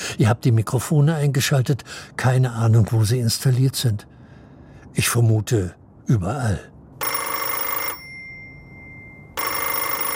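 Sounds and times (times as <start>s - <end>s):
speech: 0.1s - 4.2s, 5.0s - 6.7s
telephone ringing with a bell: 7.0s - 10.1s.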